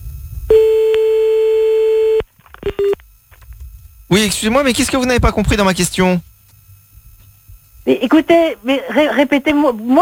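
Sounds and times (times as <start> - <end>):
long steady telephone tone during a phone call: 0.5 - 3.0
speech: 4.2 - 6.3, 7.9 - 9.9.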